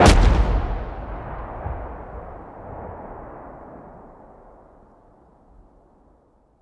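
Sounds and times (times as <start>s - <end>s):
gunfire: 0.0s - 2.7s.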